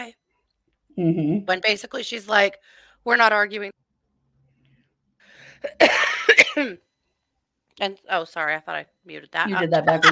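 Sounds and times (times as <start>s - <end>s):
speech: 1.0s - 3.8s, 5.6s - 6.8s, 7.8s - 10.1s
person coughing: 5.6s - 6.8s
laughter: 9.6s - 10.1s.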